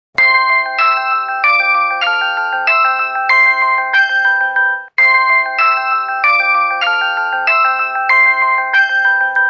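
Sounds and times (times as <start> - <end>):
old Samsung phone ringtone: 0.2 - 9.4.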